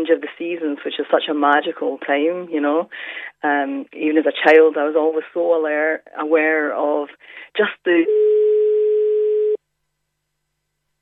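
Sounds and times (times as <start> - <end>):
speech: 0.0 - 8.2
telephone tone after dropped call: 8.0 - 9.6.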